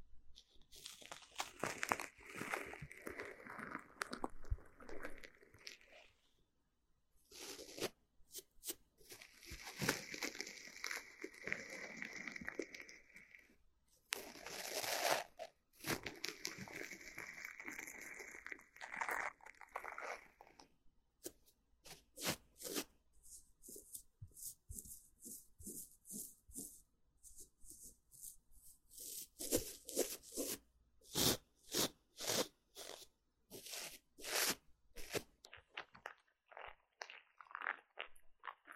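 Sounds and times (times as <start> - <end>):
ear cleaning scratchy rustling and crunching: 0.4 - 6.2, 7.3 - 13.5, 14.1 - 20.6, 21.9 - 38.7.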